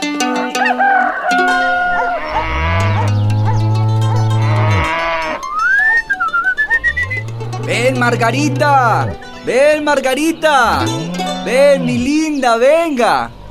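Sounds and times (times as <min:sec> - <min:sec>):
farm animal crowing: 0:00.6 - 0:09.3
farm animals bleating: 0:01.2 - 0:13.4
cow mooing in a barn: 0:01.4 - 0:12.6
speech: 0:08.1 - 0:13.4.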